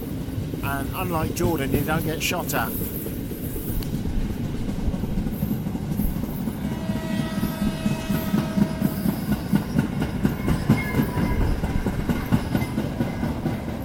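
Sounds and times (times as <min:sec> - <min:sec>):
train rumbling along rails through jungle and coastal road in Sri Lanka: 0:00.0 - 0:13.8
speech: 0:00.6 - 0:03.0
rhythmic clickety-clack of train wheels: 0:02.8 - 0:13.8.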